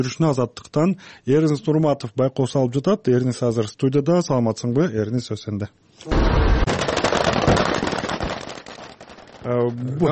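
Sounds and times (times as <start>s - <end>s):
speech: 0.0s - 6.5s, 9.4s - 10.1s
rapid gunfire during a staged anti-terror exercise in Balykchy: 6.1s - 8.8s.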